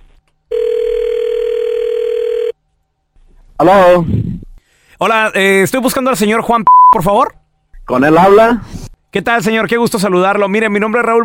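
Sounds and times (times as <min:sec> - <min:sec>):
telephone ringback tone while dialing a call: 0:00.5 - 0:02.6
speech: 0:03.6 - 0:04.4, 0:05.0 - 0:11.2.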